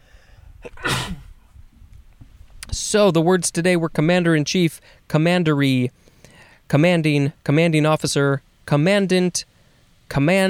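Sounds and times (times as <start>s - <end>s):
quick breath in: 0.0s - 1.3s, 6.0s - 6.7s
person sneezing: 0.6s - 1.3s
speech: 2.8s - 6.0s, 6.7s - 9.5s, 10.1s - 10.4s.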